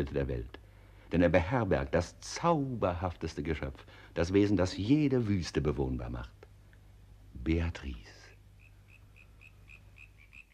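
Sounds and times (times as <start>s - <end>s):
speech: 0.0s - 6.4s, 7.4s - 8.2s
frogs croaking: 8.3s - 10.5s.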